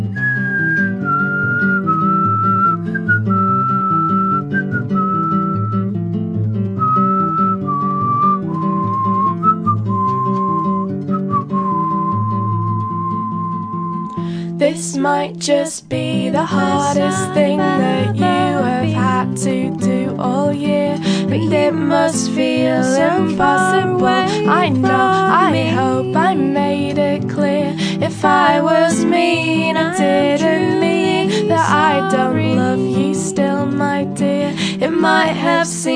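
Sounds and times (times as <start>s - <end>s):
person whistling melody: 0.1s - 6.0s, 6.6s - 14.2s
speech: 14.7s - 35.9s.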